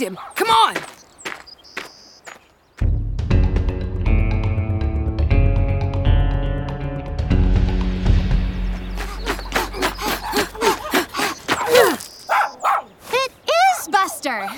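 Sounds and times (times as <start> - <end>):
speech: 0.0 - 1.0
dog barking in quick loud bursts: 0.1 - 0.4, 10.0 - 12.9
music with steady tones: 2.9 - 9.5
laughter: 9.0 - 11.9.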